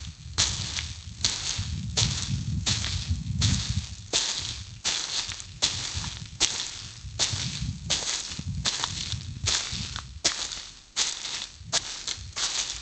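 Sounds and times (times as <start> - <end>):
fast movement through grass: 0.5 - 12.7.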